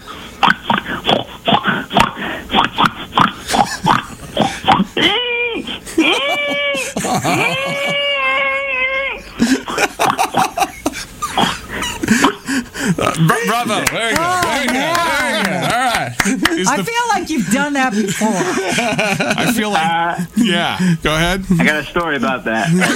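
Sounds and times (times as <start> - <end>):
person imitating a farm pig grunting and squealing: 0.4 - 9.4, 11.4 - 13.5
laughter: 3.2 - 21.9, 22.5 - 22.9
speech: 16.6 - 22.9.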